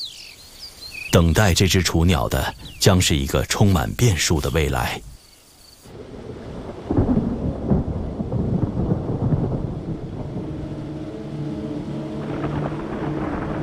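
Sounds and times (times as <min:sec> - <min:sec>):
steady rain in the mountains during the thunderstorm season: 0:00.5 - 0:13.6
speech: 0:01.2 - 0:05.1
deep rolling thunder in the mountains: 0:05.9 - 0:13.6.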